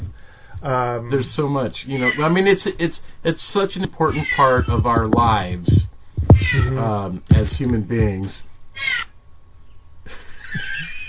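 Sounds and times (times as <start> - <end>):
speech: 0.6 - 9.0
cat meowing: 2.0 - 2.3, 4.2 - 5.5, 6.2 - 6.8, 8.8 - 9.1.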